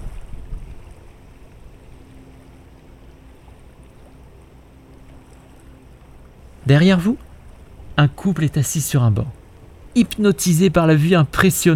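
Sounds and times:
gentle waves lapping on a lake beach: 0:00.0 - 0:11.7
low wind blowing across the bay: 0:00.0 - 0:11.7
speech: 0:06.7 - 0:07.3, 0:08.0 - 0:09.4, 0:10.0 - 0:11.7.

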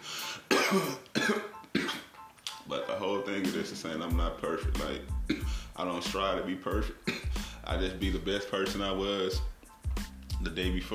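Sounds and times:
harsh raspy coughs: 0:00.5 - 0:02.1, 0:05.2 - 0:05.7, 0:07.0 - 0:07.6
speech: 0:00.7 - 0:01.4, 0:03.2 - 0:09.5, 0:10.4 - 0:10.9.

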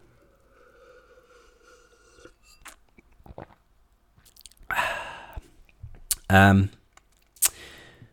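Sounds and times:
person sipping a drink: 0:00.1 - 0:05.5
speech: 0:06.3 - 0:06.8.

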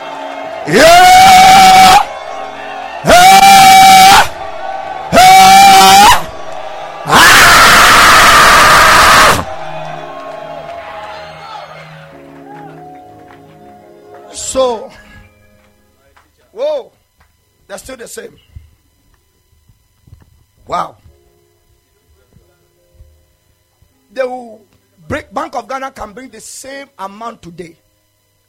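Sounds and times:
people shouting and screaming: 0:00.6 - 0:13.1
speech: 0:00.7 - 0:01.1, 0:26.3 - 0:27.8.

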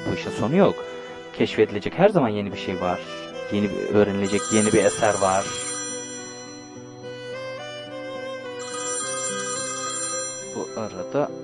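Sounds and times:
speech: 0:00.1 - 0:05.7, 0:10.8 - 0:11.4
phone ringing with a melodic electronic ringtone: 0:04.2 - 0:11.4.

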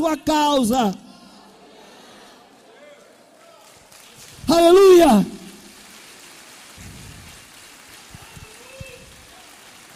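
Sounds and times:
speech: 0:00.0 - 0:01.1, 0:04.5 - 0:05.4
steady rain leaking into church: 0:05.4 - 0:09.9.

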